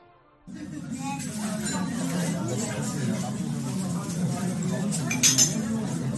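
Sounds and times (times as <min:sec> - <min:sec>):
murmur of many voices in a busy restaurant dining room: 0:00.5 - 0:06.1
speech: 0:00.5 - 0:06.1
cutlery clinking against plates in a restaurant: 0:01.1 - 0:02.9, 0:04.9 - 0:05.9.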